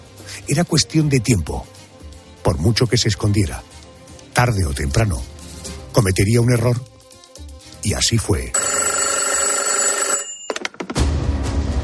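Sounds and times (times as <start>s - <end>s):
speech: 0.5s - 1.8s, 2.5s - 3.7s, 4.4s - 5.3s, 6.0s - 6.9s, 7.8s - 8.6s
old-style telephone bell ringing: 8.5s - 10.8s.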